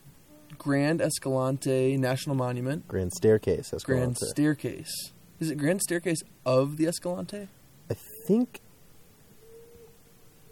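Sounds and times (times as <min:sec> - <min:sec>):
quiet outdoor noise: 0:00.0 - 0:10.4
speech: 0:00.6 - 0:08.6
owl hooting: 0:09.2 - 0:10.4.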